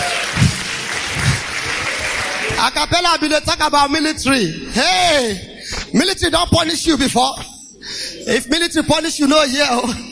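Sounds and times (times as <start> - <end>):
audience applause at a live event: 0.0 - 2.7
speech: 2.6 - 10.0.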